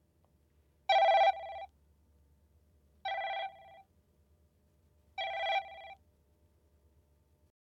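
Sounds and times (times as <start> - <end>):
holophonic ringtone: 0.9 - 1.7, 5.2 - 6.0.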